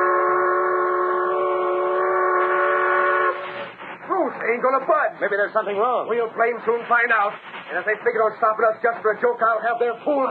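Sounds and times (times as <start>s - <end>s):
steam supply train whistle blast with a rich chordal tone: 0.0s - 3.8s
speech: 4.6s - 10.2s.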